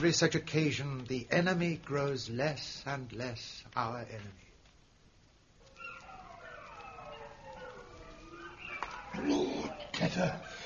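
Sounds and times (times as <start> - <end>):
speech: 0.0 - 4.4, 9.1 - 10.6
wolves howling at night in chill weather: 5.6 - 10.4.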